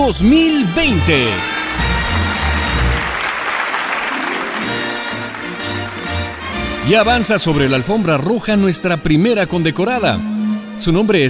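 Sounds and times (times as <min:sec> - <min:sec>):
speech: 0:00.0 - 0:02.2, 0:06.9 - 0:11.2
low pulsing musical tones: 0:00.0 - 0:09.0
loud applause from a large audience: 0:00.8 - 0:07.8.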